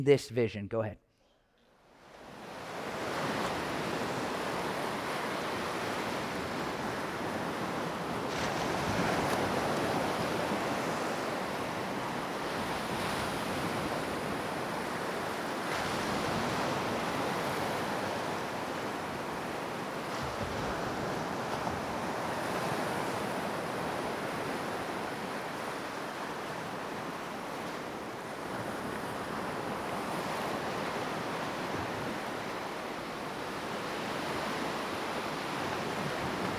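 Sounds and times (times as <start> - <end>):
speech: 0.0 - 1.0
wind: 0.0 - 36.5
ocean waves roaring surf: 2.0 - 36.5.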